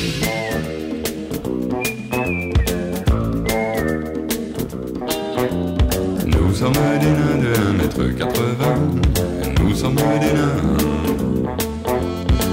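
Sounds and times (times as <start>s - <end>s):
person whistling a tune: 0.0s - 4.8s
loud band backing with drums and bass: 0.0s - 12.5s
speech: 6.7s - 8.5s.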